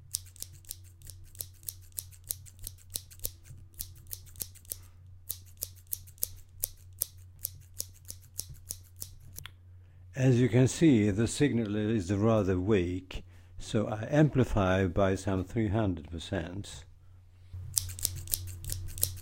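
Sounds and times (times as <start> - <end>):
low hum: 0.0 - 19.2
scissors snipping: 0.1 - 9.5, 17.7 - 19.2
speech: 10.2 - 16.9.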